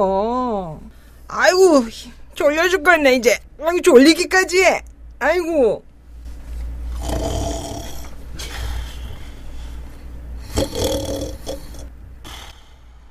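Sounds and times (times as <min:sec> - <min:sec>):
speech: 0:00.0 - 0:00.3, 0:01.4 - 0:05.9
voice imitating loud rumbling snoring: 0:07.0 - 0:08.1, 0:10.4 - 0:11.9.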